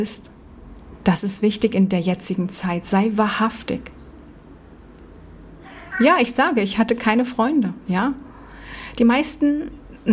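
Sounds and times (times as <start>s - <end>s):
speech: 0.0s - 0.4s, 1.0s - 4.0s, 6.0s - 8.3s, 8.9s - 10.1s
male cat meowing: 5.6s - 6.4s.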